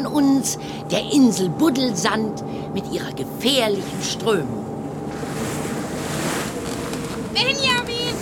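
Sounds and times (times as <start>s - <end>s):
speech: 0.1s - 4.6s, 7.4s - 8.0s
rolling sea waves: 1.9s - 8.1s
strong wind roaring over the sea: 3.6s - 8.1s.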